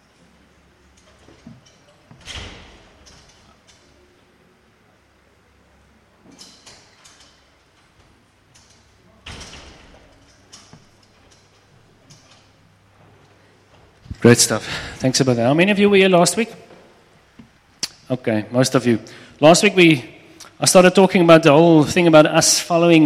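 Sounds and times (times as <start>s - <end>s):
door being pulled shut with sliding rattles and thuds: 1.2s - 3.5s, 9.2s - 11.4s
speech: 14.2s - 16.6s, 18.1s - 23.0s.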